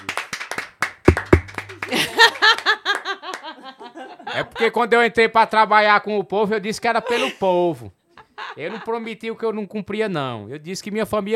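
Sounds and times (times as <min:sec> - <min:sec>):
small audience clapping: 0:00.0 - 0:03.6
rhythmic laughter: 0:01.8 - 0:04.8, 0:07.0 - 0:07.5, 0:08.2 - 0:09.1
speech: 0:04.6 - 0:08.0, 0:08.6 - 0:11.3.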